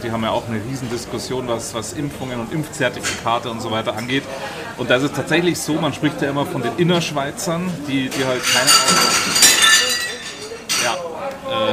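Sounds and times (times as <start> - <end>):
speech: 0.0 - 9.5
murmuring voices: 0.0 - 11.7
dishes clattering and clinking: 2.2 - 4.2, 8.0 - 11.0
crockery breaking: 8.1 - 11.0.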